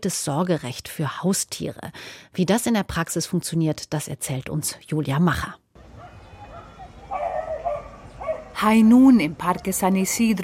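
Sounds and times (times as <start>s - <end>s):
speech: 0.0s - 5.6s, 8.6s - 10.4s
open-air ambience in a park: 0.0s - 10.4s
dogs barking and yipping on a hilly lawn in a Madrid park: 5.8s - 8.6s.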